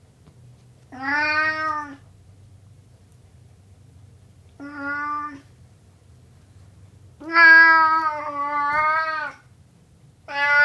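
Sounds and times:
Burmese cat meowing: 0.9 - 2.0, 4.6 - 5.5, 7.2 - 9.5, 10.3 - 10.6.

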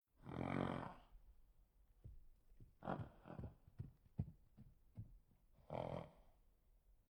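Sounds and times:
angry horse grunting and snorting: 0.2 - 1.0, 2.8 - 3.7
horse moving: 2.1 - 5.4.

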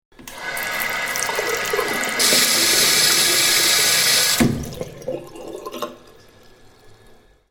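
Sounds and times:
kitchen tap turning on and off: 0.2 - 4.8.

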